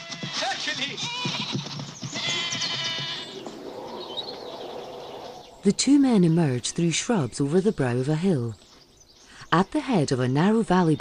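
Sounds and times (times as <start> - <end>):
goats bleating as they flee through the dirt: 0.0 - 3.4
speech: 0.7 - 1.3, 5.6 - 8.6, 9.5 - 10.9.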